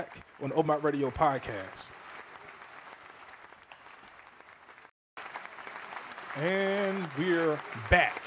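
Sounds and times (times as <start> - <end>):
speech: 0.0 - 2.0, 6.4 - 8.2
crowd applauding: 0.0 - 8.2.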